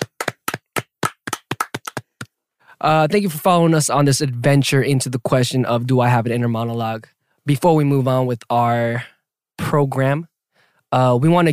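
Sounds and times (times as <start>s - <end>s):
hand clapping: 0.0s - 2.4s
speech: 2.8s - 9.1s, 9.7s - 10.3s, 10.9s - 11.5s.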